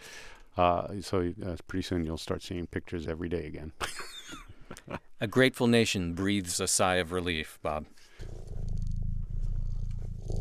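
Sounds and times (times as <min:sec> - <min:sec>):
speech: 0:00.6 - 0:04.1, 0:04.9 - 0:08.4
cat purring while being scratched behind the ear: 0:08.2 - 0:10.3.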